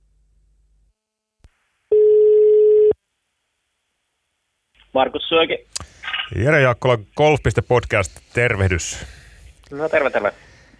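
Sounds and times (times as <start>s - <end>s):
telephone ringback tone while calling a golf course in Finland: 1.9s - 3.0s
speech: 4.9s - 10.5s.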